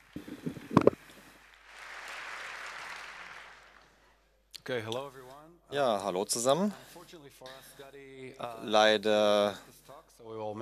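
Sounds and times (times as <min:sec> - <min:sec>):
audience applause: 0:00.0 - 0:04.2
speech: 0:04.7 - 0:10.5.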